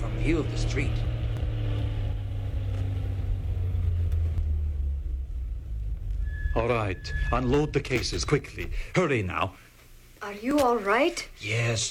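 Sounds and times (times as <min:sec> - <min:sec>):
truck engine rumbling while pulling around to the back of a house: 0:00.0 - 0:08.9
speech: 0:00.2 - 0:01.1, 0:06.6 - 0:09.6, 0:10.2 - 0:11.8.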